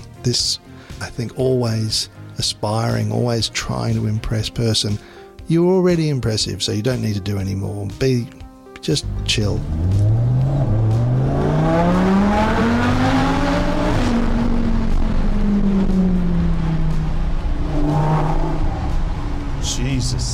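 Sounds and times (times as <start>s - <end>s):
speech: 0.2s - 9.9s
car engine accelerating hard: 9.0s - 20.3s.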